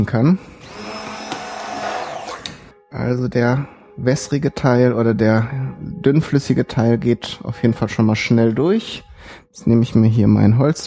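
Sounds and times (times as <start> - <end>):
speech: 0.0 - 0.5, 2.9 - 10.8
blender motor pureeing food: 0.6 - 2.7.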